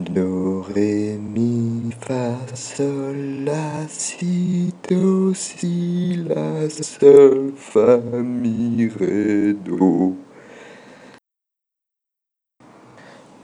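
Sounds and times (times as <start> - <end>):
voice singing: 0.0 - 10.3.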